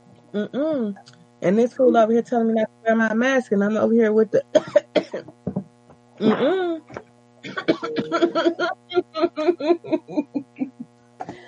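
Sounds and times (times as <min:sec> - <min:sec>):
steady low electrical hum: 0:00.0 - 0:11.4
speech: 0:00.3 - 0:05.4, 0:06.2 - 0:06.8, 0:07.8 - 0:10.4
small cough with short sharp bursts: 0:04.6 - 0:05.3, 0:07.5 - 0:08.8
laughter: 0:07.6 - 0:11.4.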